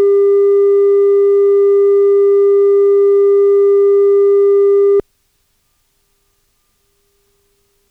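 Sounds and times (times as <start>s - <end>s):
0dB 315Hz test tone: 0.0s - 5.0s.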